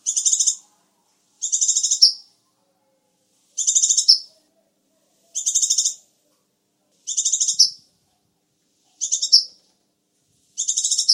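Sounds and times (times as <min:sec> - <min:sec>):
sunbird song: 0:00.0 - 0:00.6, 0:01.4 - 0:02.3, 0:03.6 - 0:04.4, 0:05.4 - 0:06.0, 0:07.1 - 0:07.8, 0:09.0 - 0:09.6, 0:10.6 - 0:11.1.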